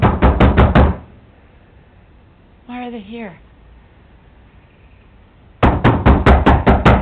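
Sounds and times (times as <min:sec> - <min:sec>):
sheriff's deputies knocking loudly on a front door: 0:00.0 - 0:01.1, 0:05.6 - 0:06.9
speech: 0:02.9 - 0:03.5.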